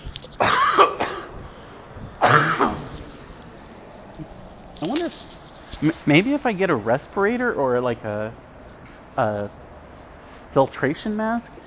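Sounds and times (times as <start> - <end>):
rough throaty coughing: 0.4 - 1.4, 2.2 - 3.0
speech: 5.8 - 8.5, 9.2 - 9.6, 10.5 - 11.6.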